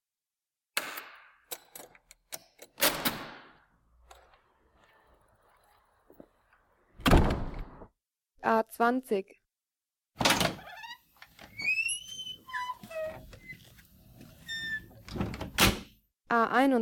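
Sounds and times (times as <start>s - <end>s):
door creaking open: 4.0s - 7.9s, 10.2s - 16.0s
door shut with a heavy booming thud: 7.0s - 7.9s, 10.2s - 10.6s, 15.1s - 15.9s
speech: 8.4s - 9.4s, 16.3s - 16.8s.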